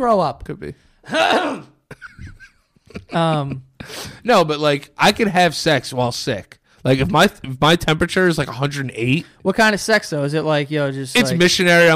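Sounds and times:
speech: 0.0 - 1.7, 3.1 - 11.9
throat-clearing bursts: 1.1 - 2.4
harsh throaty phlegmy coughs: 1.1 - 2.5.

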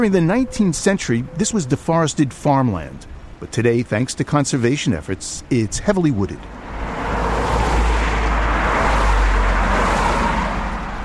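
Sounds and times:
speech: 0.0 - 7.0
steady roar of road traffic: 0.0 - 11.0
cars speeding by on a road: 6.5 - 11.0.

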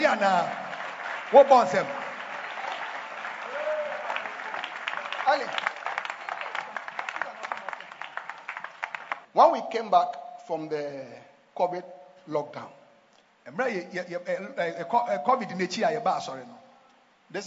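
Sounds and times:
crowd clapping: 0.0 - 9.3
speech: 0.1 - 0.6, 1.3 - 2.1, 5.3 - 5.7, 9.4 - 12.8, 13.5 - 16.6, 17.3 - 17.4
crowd cheering and shouting: 3.4 - 4.6.

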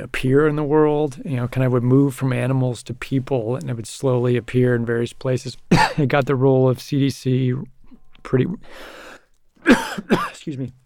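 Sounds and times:
speech: 0.0 - 10.8
slight harsh cough: 5.7 - 6.0, 9.6 - 10.4.

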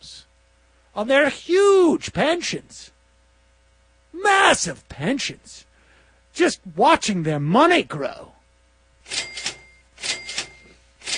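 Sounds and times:
speech: 1.0 - 3.0, 4.1 - 5.7, 6.4 - 8.4
cash register ringing with mechanical clatter: 9.1 - 11.1.

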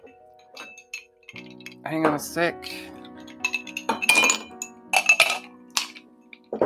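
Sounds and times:
ice cubes clinking into a glass while a drink is made: 0.5 - 1.8, 3.1 - 6.0
speech: 1.8 - 3.0.

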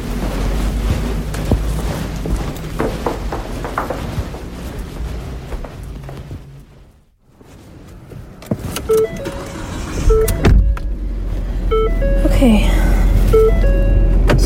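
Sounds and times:
car engine turning over into a low rumble: 0.0 - 14.4
clicks and thumps inside a car: 0.8 - 6.4.

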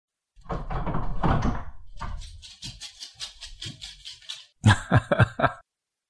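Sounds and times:
door being opened: 0.4 - 4.5
laughter: 4.6 - 5.6.

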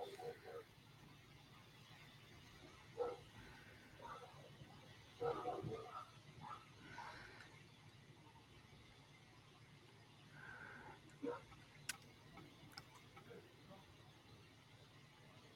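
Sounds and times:
dogs barking: 0.0 - 0.7, 2.9 - 4.5, 5.2 - 7.3, 11.2 - 11.6
low hum: 0.0 - 15.5.

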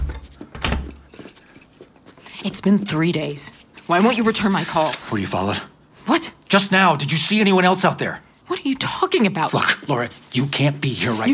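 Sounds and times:
door swinging shut: 0.0 - 1.0
speech: 2.4 - 11.3.

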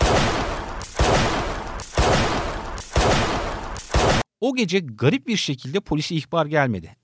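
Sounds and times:
dense bursts of gunfire: 0.0 - 4.3
speech: 4.4 - 7.0.

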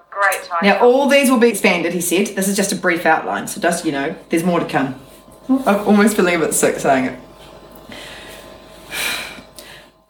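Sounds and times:
speech: 0.3 - 7.2
deep breath: 7.8 - 10.0.

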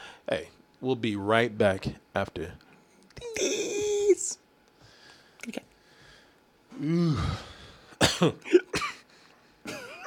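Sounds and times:
speech: 0.3 - 2.7, 5.4 - 5.7, 6.8 - 7.5, 8.2 - 8.8
person coughing harshly: 6.8 - 9.1, 9.7 - 10.0
person clearing throat with a rasping groan: 8.0 - 9.0, 9.7 - 10.0.

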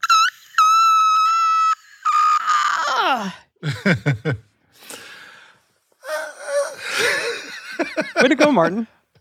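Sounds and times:
strained vocal squeaks, wheezy gasps and breathy vocal bursts: 0.0 - 3.5, 4.8 - 7.3
speech: 3.1 - 5.0, 8.0 - 9.0.

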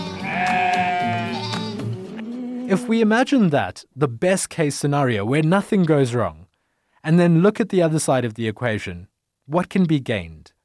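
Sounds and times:
sheep bleating: 0.0 - 2.0
speech: 2.7 - 6.4, 7.0 - 10.5.

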